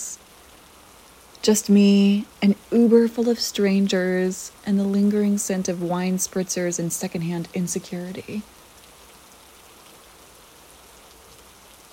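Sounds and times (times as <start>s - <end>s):
steady rain pattering on surfaces: 0.0s - 11.9s
speech: 1.4s - 8.6s.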